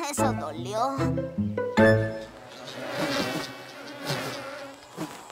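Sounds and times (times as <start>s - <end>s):
speech: 0.2s - 2.0s
insect-like buzzing: 2.4s - 5.3s.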